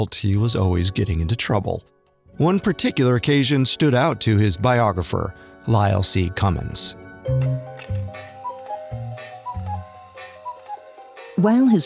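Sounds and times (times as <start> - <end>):
speech: 0.0 - 8.3, 11.4 - 11.8
cuckoo clock ticking: 7.8 - 11.8.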